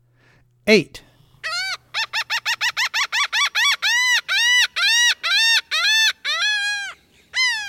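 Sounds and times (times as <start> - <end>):
speech: 0.7 - 1.0
laughing gull calling: 1.4 - 7.6.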